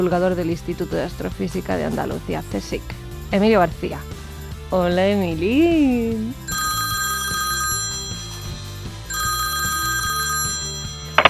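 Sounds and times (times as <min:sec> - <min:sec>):
speech: 0:00.0 - 0:06.5
telephone ringing: 0:06.5 - 0:11.2.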